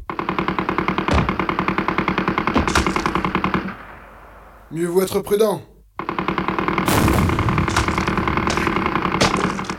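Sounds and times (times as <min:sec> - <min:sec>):
rapid automatic gunfire in a dark cave: 0:00.1 - 0:04.1, 0:06.0 - 0:09.7
speech: 0:04.7 - 0:05.7.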